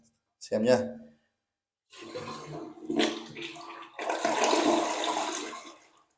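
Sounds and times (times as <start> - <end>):
speech: 0.5 - 1.0
toilet flushing after pressing the flush button: 1.9 - 6.1.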